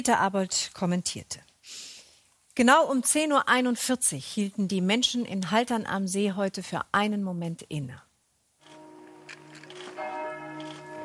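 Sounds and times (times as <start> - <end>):
speech: 0.0 - 1.9, 2.6 - 8.1
faint noise: 0.0 - 11.0
church bells ringing across an open town: 8.6 - 11.0.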